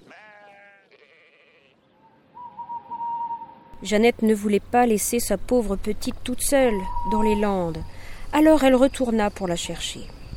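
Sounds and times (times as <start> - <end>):
sheep bleating: 0.0 - 1.9
speech: 3.8 - 10.2.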